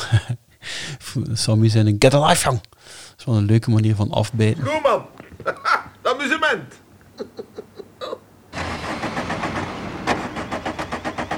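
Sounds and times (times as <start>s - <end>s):
speech: 1.2s - 5.7s
laughter: 5.2s - 6.2s, 7.0s - 8.2s
car engine cranking but failing to start: 8.6s - 11.3s.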